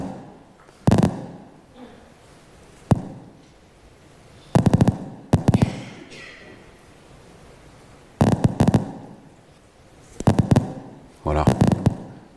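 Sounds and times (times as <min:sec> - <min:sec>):
single neuron firing spikes crackling pops: 0:00.0 - 0:01.5, 0:02.8 - 0:03.3, 0:04.5 - 0:05.8, 0:08.2 - 0:09.3, 0:10.1 - 0:12.2.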